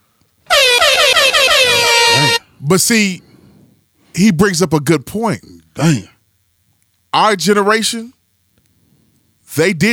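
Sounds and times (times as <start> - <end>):
air horn sound effect honks: 0.5 - 2.5
speech: 2.7 - 3.3, 4.2 - 6.1, 7.1 - 8.2, 9.5 - 9.9.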